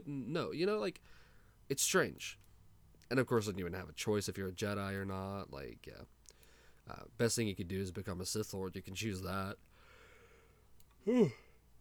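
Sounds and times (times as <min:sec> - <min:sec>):
speech: 0:00.0 - 0:02.4, 0:03.1 - 0:06.2, 0:06.9 - 0:09.7, 0:11.0 - 0:11.4
person yawning: 0:11.0 - 0:11.6.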